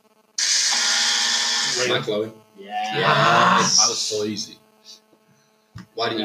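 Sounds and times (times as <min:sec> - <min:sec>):
loud harsh electronic quiz buzzer: 0:00.4 - 0:02.3, 0:02.9 - 0:04.3
speech: 0:01.8 - 0:04.6, 0:06.0 - 0:06.2.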